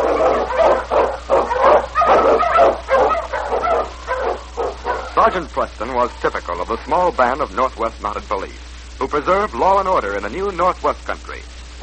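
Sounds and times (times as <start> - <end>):
Eskimo lead sled dog barking and yelping in storm and snow: 0.0 - 5.4
speech: 5.4 - 11.8.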